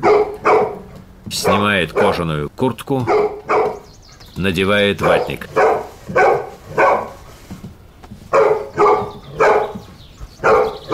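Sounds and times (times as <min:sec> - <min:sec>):
tied-up dog barking: 0:00.0 - 0:02.2, 0:03.0 - 0:03.9, 0:05.0 - 0:07.2, 0:08.3 - 0:10.9
speech: 0:01.3 - 0:03.2, 0:04.4 - 0:06.3.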